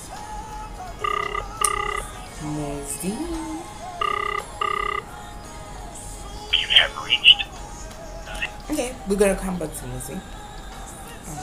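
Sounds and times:
outgoing phone call ringback tones: 1.0s - 2.2s, 4.0s - 5.1s
faint noise: 1.0s - 10.3s
speech: 2.4s - 3.5s, 9.1s - 10.4s.

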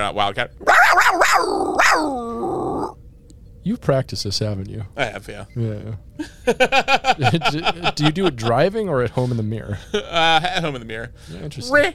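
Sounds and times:
speech: 0.0s - 3.0s, 3.6s - 11.9s
person imitating a lion roar: 0.6s - 3.0s
laughter: 6.2s - 10.4s.

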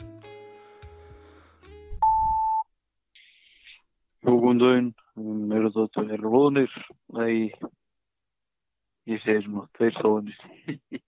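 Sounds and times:
high-pitched answering-machine beep after a voicemail greeting: 2.0s - 2.7s
speech: 4.5s - 7.8s, 9.0s - 11.0s.

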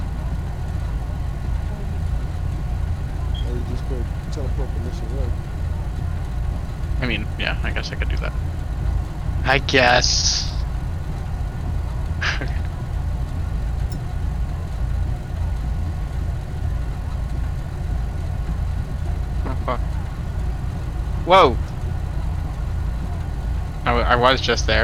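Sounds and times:
tow truck engine idling in a video game: 0.0s - 24.8s
laughter: 3.4s - 5.3s, 7.0s - 8.3s, 12.2s - 12.7s, 19.5s - 19.8s
speech: 4.1s - 5.5s, 7.0s - 8.6s, 9.4s - 10.5s, 12.4s - 12.6s, 19.7s - 19.9s, 21.3s - 21.7s, 23.9s - 24.8s.

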